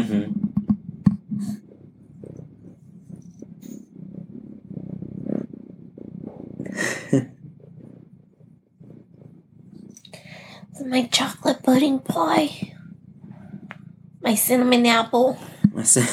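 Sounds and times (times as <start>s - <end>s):
speech: 0.0s - 0.4s, 7.1s - 7.4s, 10.9s - 12.7s, 14.3s - 16.1s
cat purring: 0.0s - 16.1s.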